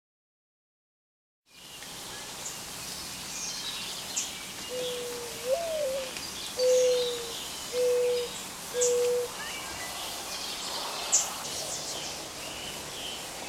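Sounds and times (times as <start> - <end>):
mourning dove giving its soft cooing song: 4.7 - 9.4.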